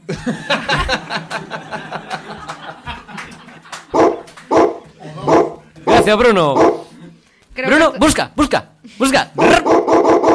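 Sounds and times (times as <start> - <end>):
laughter: 0.0 - 7.4
speech: 0.2 - 2.2, 6.1 - 6.8, 7.6 - 10.2
dog barking: 3.9 - 6.9, 9.4 - 10.3.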